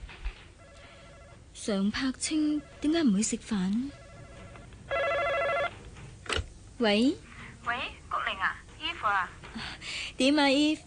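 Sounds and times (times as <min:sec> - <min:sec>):
telephone ringing with an electronic trill: 0:00.6 - 0:05.8
speech: 0:01.6 - 0:04.0, 0:06.8 - 0:08.0, 0:09.0 - 0:10.8.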